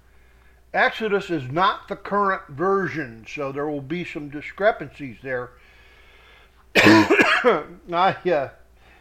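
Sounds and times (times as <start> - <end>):
speech: 0.7 - 5.7, 6.8 - 8.6
person coughing: 6.8 - 7.8.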